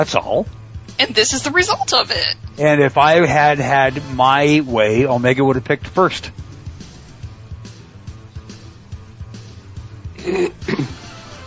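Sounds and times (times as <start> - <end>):
speech: 0.0 - 6.4, 10.3 - 11.0
low steady hum: 0.0 - 10.9
throat clearing: 10.2 - 11.1.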